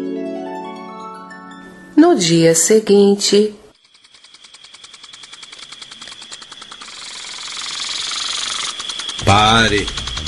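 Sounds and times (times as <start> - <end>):
speech: 2.0 - 3.6, 9.3 - 10.0
small motor scooter engine buzzing with a rattling pulse: 3.7 - 10.2.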